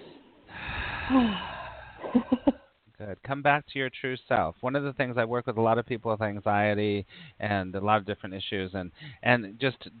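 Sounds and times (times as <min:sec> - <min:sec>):
several people taking a deep breath together: 0:00.0 - 0:02.0
speech: 0:01.1 - 0:01.5, 0:02.1 - 0:02.5, 0:03.1 - 0:09.9.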